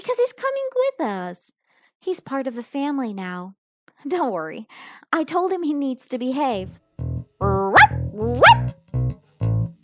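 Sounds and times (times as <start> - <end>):
speech: 0.1 - 6.8, 7.4 - 8.7
person imitating a dog barking: 7.4 - 8.7.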